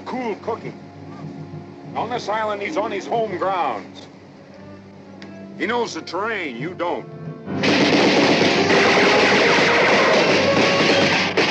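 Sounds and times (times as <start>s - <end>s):
speech: 0.1s - 1.3s, 2.0s - 4.1s, 5.6s - 7.2s
rapid gunfire in a war scene on an island: 7.6s - 11.4s.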